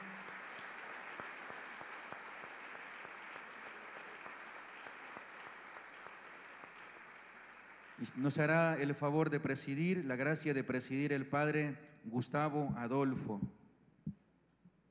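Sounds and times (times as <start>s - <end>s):
applause from a sizable crowd: 0.0s - 8.3s
speech: 8.0s - 13.6s.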